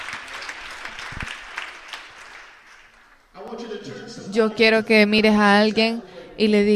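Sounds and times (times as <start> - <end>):
congregation applauding: 0.0 - 3.3
speech: 3.8 - 6.7.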